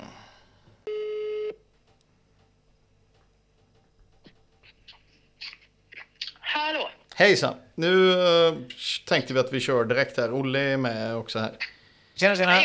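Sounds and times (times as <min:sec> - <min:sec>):
phone call ringing tone: 0:00.9 - 0:01.6
faint clicks and ticks on the phone line: 0:01.7 - 0:05.1
speech: 0:07.2 - 0:12.6.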